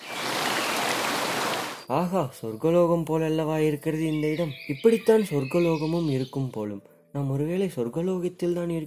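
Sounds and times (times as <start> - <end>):
river water babbling through forest: 0.0 - 1.9
speech: 1.9 - 8.8.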